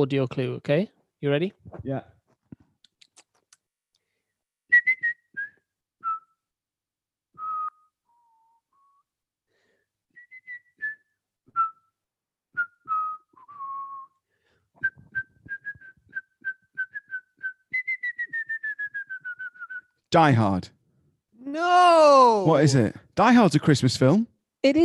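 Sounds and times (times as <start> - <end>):
speech: 0.0 - 2.1, 20.1 - 20.8, 21.5 - 24.8
person whistling a short film theme tune: 4.7 - 6.5, 7.3 - 9.1, 10.1 - 20.0.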